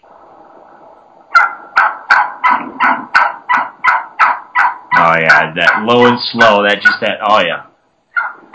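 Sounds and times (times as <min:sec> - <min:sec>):
Gould's wild turkey hen yelping aggressively in Arizona: 0:01.3 - 0:07.1, 0:08.1 - 0:08.5
speech: 0:05.1 - 0:07.7.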